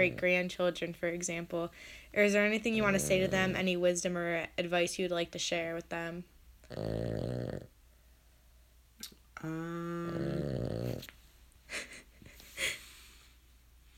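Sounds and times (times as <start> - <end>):
dog snoring: 0.0 - 0.3, 2.7 - 3.8, 6.6 - 7.7, 9.4 - 11.1
speech: 0.0 - 7.7, 9.4 - 11.9
faint dog snorts and breaths: 2.8 - 3.6, 10.2 - 11.1.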